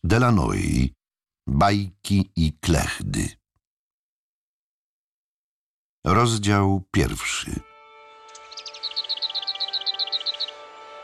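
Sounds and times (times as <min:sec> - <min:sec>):
speech: 0:00.1 - 0:03.4, 0:06.0 - 0:07.7
bird chirping in bushes: 0:08.1 - 0:11.0.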